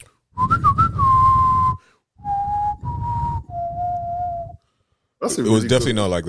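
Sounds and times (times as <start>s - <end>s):
person whistling a slow Western-style tune: 0.0s - 4.6s
speech: 5.3s - 6.2s.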